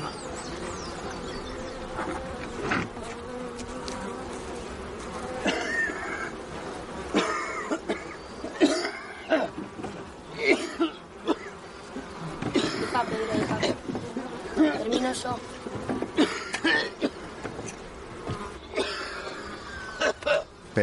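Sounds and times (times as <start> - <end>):
bees swarming around a beehive: 0.0 - 20.8
man coughing heavily in harsh bursts: 5.4 - 6.4, 7.1 - 9.6, 10.4 - 11.6, 12.5 - 13.0, 16.2 - 17.2, 18.7 - 19.4, 20.0 - 20.5.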